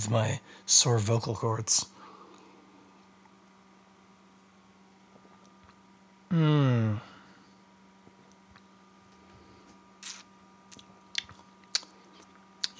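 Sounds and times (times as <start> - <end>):
speech: 0.0 - 2.0, 6.3 - 7.1
steady low electrical hum: 0.0 - 12.7
person sipping and swallowing beer: 10.0 - 12.7.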